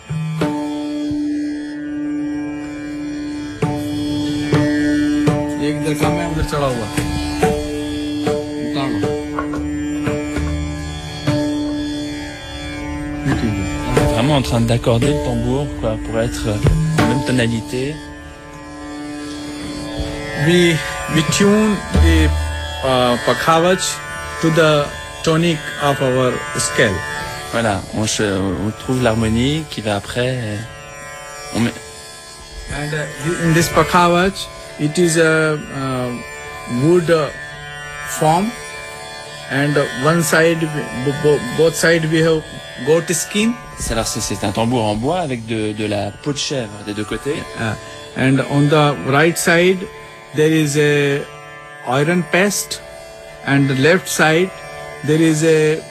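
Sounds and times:
tanpura drone for dhrupad: 0:00.0 - 0:55.8.

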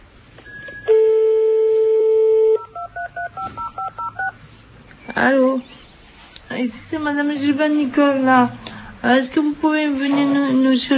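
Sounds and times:
telephone dial tone: 0:00.9 - 0:04.3
telephone keypad tones dialing a taxi: 0:01.9 - 0:04.4
speech: 0:05.2 - 0:05.7, 0:06.6 - 0:10.9.

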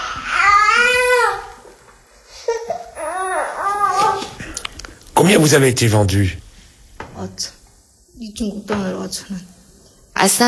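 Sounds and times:
baby crying: 0:00.0 - 0:01.6, 0:02.6 - 0:04.4
speech: 0:05.3 - 0:06.4, 0:07.3 - 0:07.6, 0:08.2 - 0:09.6, 0:10.2 - 0:10.4.

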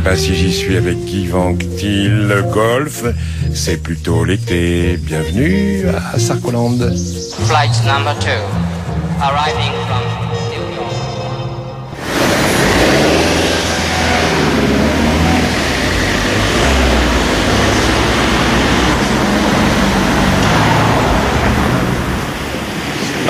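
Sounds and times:
dense road traffic roar beside the ring road on the suburban side: 0:00.0 - 0:00.8, 0:07.0 - 0:23.2
speech: 0:00.1 - 0:10.2.

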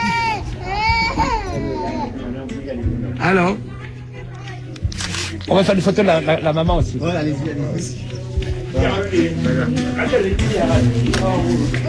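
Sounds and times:
newborn baby crying: 0:00.0 - 0:02.2
speech: 0:03.2 - 0:03.7, 0:05.5 - 0:11.8.

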